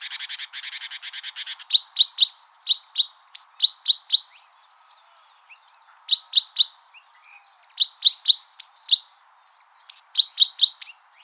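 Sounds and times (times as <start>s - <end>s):
great tit calls: 0.0s - 4.4s, 6.0s - 6.8s, 7.7s - 9.1s, 9.8s - 11.2s.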